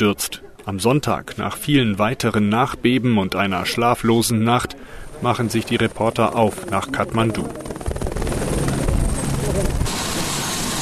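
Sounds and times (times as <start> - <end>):
speech: 0.0 - 7.7
helicopter carrying supplies, rotor chopping: 4.5 - 10.7.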